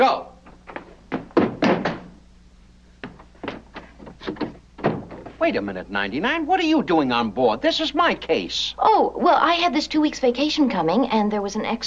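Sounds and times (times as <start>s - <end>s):
speech: 0.0s - 0.3s, 5.4s - 11.8s
light knocks and bumps: 0.5s - 2.2s, 3.0s - 5.6s
running body slamming hard into door: 0.7s - 2.2s, 3.0s - 5.4s.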